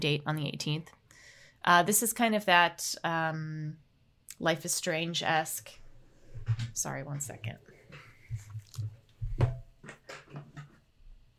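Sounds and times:
speech: 0:00.0 - 0:01.0, 0:01.6 - 0:03.8, 0:04.4 - 0:05.8, 0:06.4 - 0:07.7
soft thumps: 0:06.3 - 0:10.8
pet chewing and gnawing on objects: 0:08.2 - 0:09.1.

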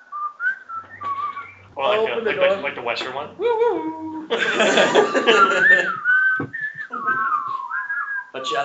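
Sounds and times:
person whistling a short wavering tune while walking down the street: 0:00.0 - 0:01.7, 0:05.3 - 0:08.5
speech: 0:01.8 - 0:06.0, 0:08.4 - 0:08.6
laughter: 0:03.6 - 0:06.1.

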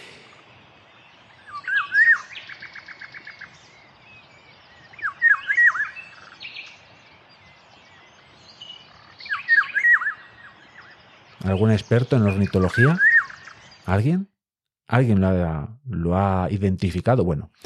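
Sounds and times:
Eurasian golden oriole song: 0:00.1 - 0:14.0
speech: 0:11.5 - 0:14.3, 0:14.9 - 0:17.6.

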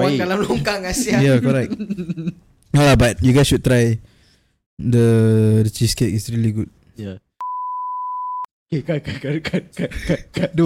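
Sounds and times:
speech: 0:00.1 - 0:04.1, 0:04.8 - 0:07.2, 0:08.7 - 0:10.6
censor beep: 0:07.4 - 0:08.5.

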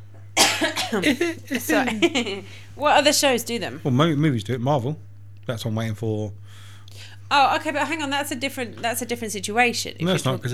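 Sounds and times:
person coughing mid-conversation: 0:00.4 - 0:01.4
speech: 0:00.6 - 0:10.5
laughter: 0:00.9 - 0:02.7.

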